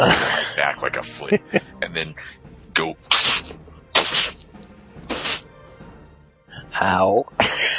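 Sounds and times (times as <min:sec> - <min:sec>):
laughter: 0:00.0 - 0:02.3, 0:07.4 - 0:07.7
speech: 0:00.0 - 0:03.6, 0:06.8 - 0:07.7
voice imitating forceful sneezes: 0:03.1 - 0:05.5.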